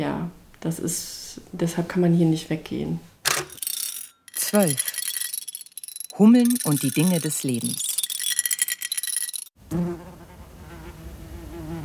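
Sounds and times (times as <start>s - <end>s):
speech: 0.0s - 3.1s, 4.5s - 5.0s, 6.2s - 7.9s, 9.7s - 9.9s
rattling clatter: 3.3s - 9.5s.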